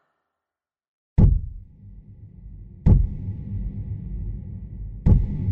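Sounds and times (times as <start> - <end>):
heavy knocks on an apartment door: 1.2 - 1.7, 2.9 - 3.2, 5.1 - 5.4.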